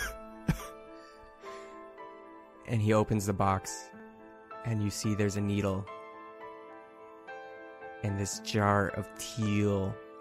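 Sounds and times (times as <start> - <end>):
man coughing while sitting up: 0.0 - 0.8
speech: 2.7 - 4.0, 4.6 - 6.0, 8.0 - 10.0.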